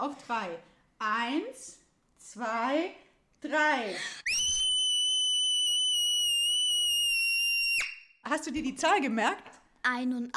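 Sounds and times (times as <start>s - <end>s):
speech: 0.0s - 4.5s, 8.3s - 10.3s
very loud shrill human scream: 4.2s - 8.2s.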